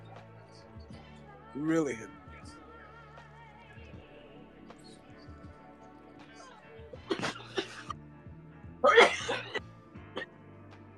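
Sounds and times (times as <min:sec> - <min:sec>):
speech: 0:01.6 - 0:02.2
harsh raspy coughs from someone after smoking: 0:07.0 - 0:08.0, 0:08.8 - 0:10.3.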